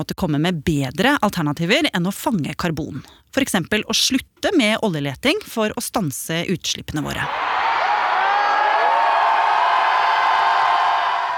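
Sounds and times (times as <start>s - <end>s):
speech: 0.0s - 7.6s
climate protest crowd roaring and shouting: 7.3s - 11.3s.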